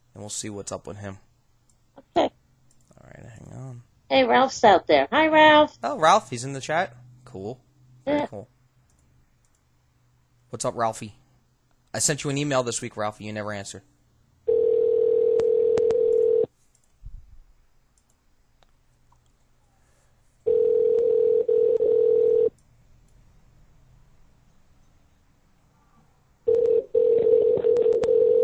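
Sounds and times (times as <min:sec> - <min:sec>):
speech: 0:00.2 - 0:01.3, 0:04.2 - 0:08.5, 0:10.5 - 0:11.2, 0:11.9 - 0:13.9
electronic phone line ring tones on a call to a home: 0:14.5 - 0:16.5, 0:20.5 - 0:22.5, 0:26.5 - 0:28.4.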